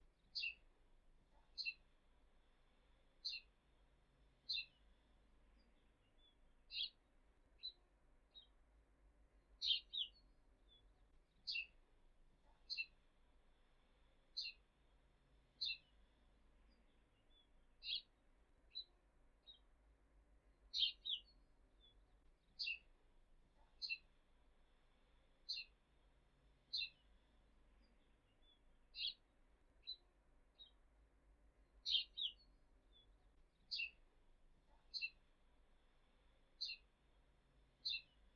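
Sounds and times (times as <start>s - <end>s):
house sparrow chirping: 0.2s - 0.6s, 1.4s - 1.8s, 3.2s - 3.6s, 4.4s - 4.9s, 5.6s - 7.0s, 9.6s - 11.8s, 12.5s - 13.0s, 14.4s - 14.7s, 15.6s - 16.1s, 16.7s - 18.1s, 20.7s - 22.9s, 23.6s - 24.1s, 25.5s - 25.8s, 26.6s - 29.2s, 29.8s - 30.9s, 31.8s - 34.0s, 34.8s - 36.9s, 37.6s - 38.3s.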